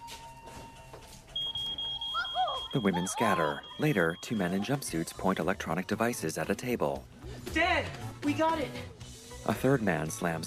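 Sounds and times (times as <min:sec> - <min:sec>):
smoke detector beeping set off by burning paper: 0:00.0 - 0:05.2
speech: 0:02.7 - 0:10.4.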